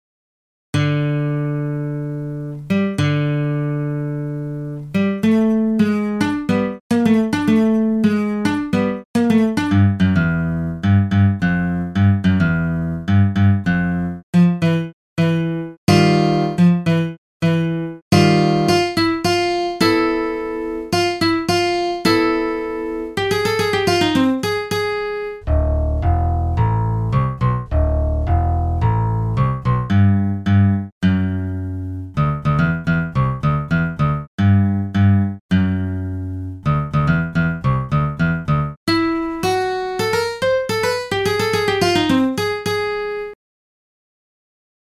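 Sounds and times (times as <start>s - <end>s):
dry guitar ribbon patterns: 0.8s - 43.4s.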